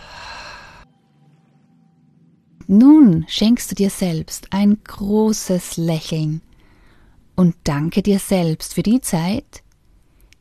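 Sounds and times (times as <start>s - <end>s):
deep breath in through the nose and out through the mouth during a stress-relief meditation: 0.0s - 0.9s, 6.6s - 7.3s
speech: 2.7s - 6.5s, 7.4s - 9.6s.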